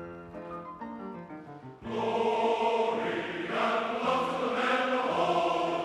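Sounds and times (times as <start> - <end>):
clean choir: 1.8 - 5.8.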